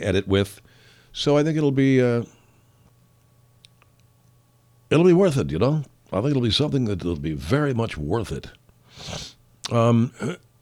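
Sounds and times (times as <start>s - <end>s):
speech: 0.0s - 2.4s, 4.9s - 10.5s
person clearing throat: 9.7s - 10.5s.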